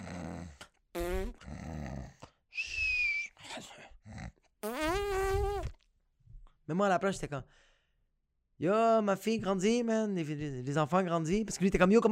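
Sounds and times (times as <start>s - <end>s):
voice imitating a woman farting in her sleep: 0.0s - 2.2s, 4.1s - 5.8s
voice imitating a woman snoring in her sleep: 0.0s - 2.3s, 3.5s - 5.7s
speech: 6.7s - 7.7s, 8.6s - 12.1s.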